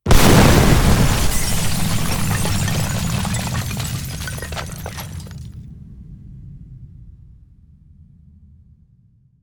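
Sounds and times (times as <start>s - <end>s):
reactor explosion: 0.0s - 5.4s.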